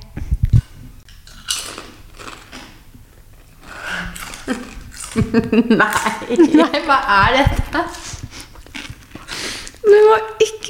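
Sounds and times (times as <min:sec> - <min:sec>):
softer chewing: 0:00.5 - 0:06.4, 0:07.9 - 0:09.8
biting and crunching on rib-flavoured potato chips: 0:01.1 - 0:06.3, 0:08.5 - 0:09.8
laughter: 0:04.5 - 0:07.1
speech: 0:04.5 - 0:08.0, 0:09.9 - 0:10.6.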